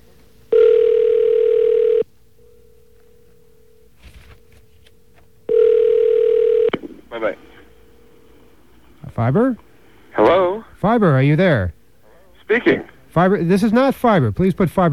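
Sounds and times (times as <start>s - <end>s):
faint hum: 0.0s - 14.9s
telephone ringback tones while calling someone elsewhere in the city: 0.5s - 2.1s, 5.5s - 6.7s
brief rustle: 4.0s - 5.3s
speech: 9.2s - 9.7s, 10.8s - 11.8s, 12.5s - 14.9s.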